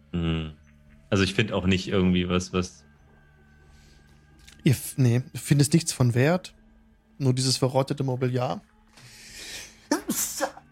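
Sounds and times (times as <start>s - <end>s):
speech: 1.1s - 2.9s, 4.6s - 6.6s, 7.2s - 8.7s
sneeze: 9.9s - 10.6s.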